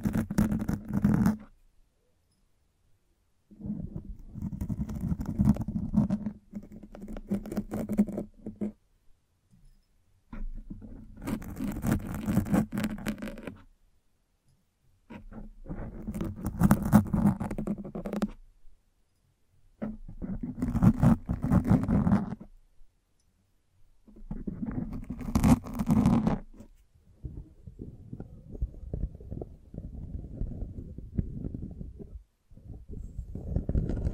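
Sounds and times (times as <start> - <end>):
microphone brushing and scratching: 0.0 - 1.6, 3.5 - 8.8, 10.3 - 13.7, 15.1 - 18.4, 19.8 - 22.6, 24.1 - 34.1.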